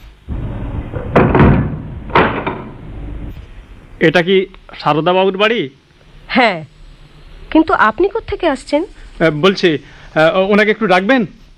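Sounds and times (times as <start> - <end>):
knocking on a door in a home: 1.0 - 2.7
speech: 4.0 - 6.7, 7.5 - 11.4.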